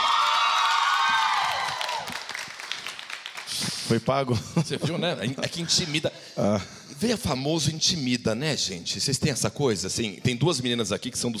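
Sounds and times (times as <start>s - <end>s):
studio audience cheering and screaming: 0.0s - 2.4s
scattered clapping: 0.5s - 3.9s
speech: 3.9s - 11.3s.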